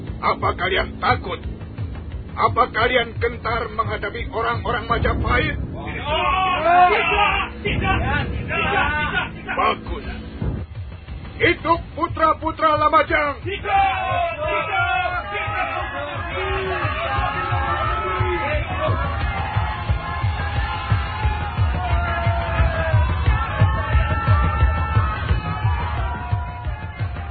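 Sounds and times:
speech: 0.2 - 1.6, 2.4 - 10.2, 11.4 - 17.5
large group of soldiers shouting and yelling: 5.9 - 9.5, 13.5 - 27.2.

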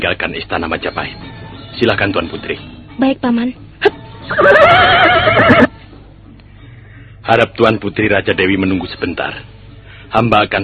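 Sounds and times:
speech: 0.0 - 3.6, 4.2 - 5.7, 7.3 - 10.6
horse neighing: 4.3 - 5.7.

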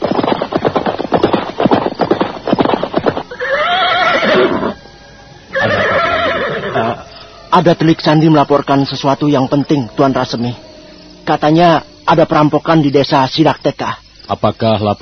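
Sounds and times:
irregular hoofbeats of mounted soldiers' horses: 0.0 - 7.4
horses of mounted soldiers whinnying: 2.9 - 7.6
speech: 7.6 - 10.6, 11.3 - 15.0.

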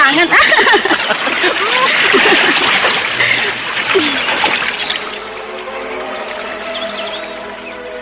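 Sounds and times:
splashing and rushing water in a rocky river: 0.0 - 8.0
man and woman laughing while playing in a river: 0.3 - 4.1.

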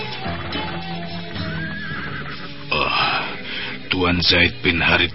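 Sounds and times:
horse neighing and whinnying: 0.1 - 3.4
speech: 4.2 - 5.1.

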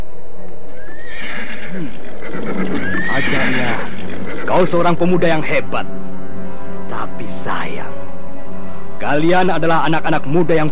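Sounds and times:
dense noisy background: 0.0 - 10.7
horse neighing as riders mount up: 0.8 - 5.5
speech: 4.6 - 6.2, 7.1 - 8.1, 9.0 - 10.7.

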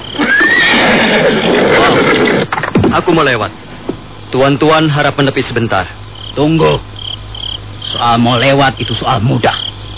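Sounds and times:
horse neighing and whinnying: 0.1 - 2.5
speech: 3.0 - 3.7, 4.3 - 6.9, 7.9 - 9.7.

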